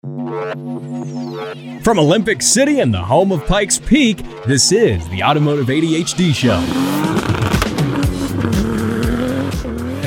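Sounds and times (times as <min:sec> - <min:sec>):
speech: 0:00.3 - 0:07.4
race car tire squealing: 0:04.8 - 0:10.0
race car engines revving at a street fan fest: 0:05.0 - 0:10.0.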